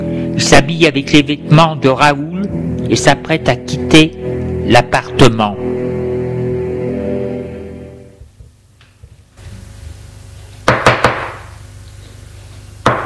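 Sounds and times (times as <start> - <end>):
music: 0.0 - 8.3
speech: 0.4 - 5.7
knocking on a door: 10.7 - 11.4.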